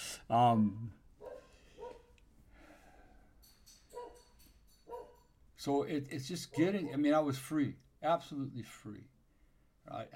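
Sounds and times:
speech: 0:00.3 - 0:01.0, 0:05.6 - 0:09.2, 0:09.8 - 0:10.1
dog barking in a home: 0:01.2 - 0:02.1, 0:04.0 - 0:04.3, 0:04.9 - 0:05.3, 0:06.5 - 0:07.2.

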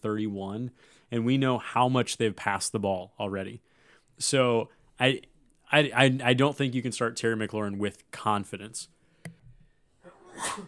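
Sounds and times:
speech: 0:00.0 - 0:09.0, 0:10.4 - 0:10.6
person sneezing: 0:10.0 - 0:10.6.

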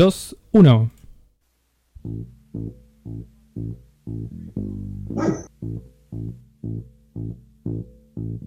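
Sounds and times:
speech: 0:00.0 - 0:01.0, 0:02.0 - 0:08.4
pulsing bassline music: 0:02.0 - 0:08.4
dog barking: 0:05.2 - 0:05.5.

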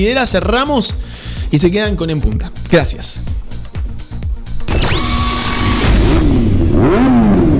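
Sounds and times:
speech: 0:00.0 - 0:03.5, 0:06.2 - 0:07.2
engines revving at full power: 0:04.7 - 0:07.5.

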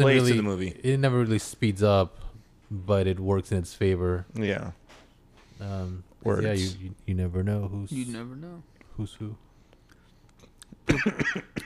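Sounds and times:
speech: 0:00.0 - 0:04.8, 0:05.6 - 0:09.4, 0:10.9 - 0:11.6
harsh cough with rough follow-on hacks: 0:10.8 - 0:11.6.

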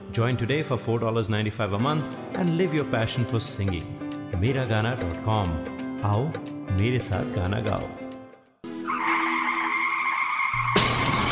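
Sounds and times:
speech: 0:00.1 - 0:08.0
car tires squealing loudly: 0:08.8 - 0:11.3
car crash with harsh ringing noise: 0:09.1 - 0:11.3.

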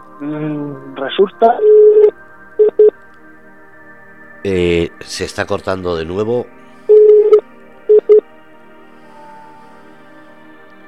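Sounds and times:
speech: 0:00.2 - 0:01.8, 0:04.4 - 0:06.6
telephone line tones from a second incoming call: 0:01.6 - 0:02.9, 0:06.9 - 0:08.2.

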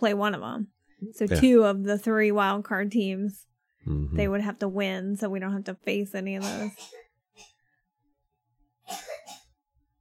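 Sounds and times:
speech: 0:00.0 - 0:07.5
person coughing: 0:06.4 - 0:07.1, 0:08.9 - 0:09.5.

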